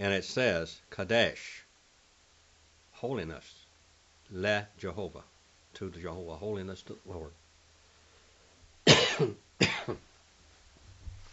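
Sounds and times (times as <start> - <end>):
speech: 0.0 - 1.6, 3.0 - 3.6, 4.3 - 7.4, 9.2 - 10.1
person coughing: 8.9 - 10.0.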